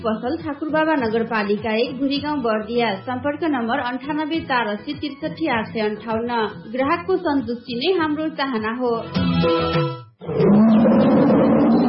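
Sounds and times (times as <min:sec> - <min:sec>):
speech: 0:00.0 - 0:11.0
tiger roaring: 0:10.2 - 0:11.8.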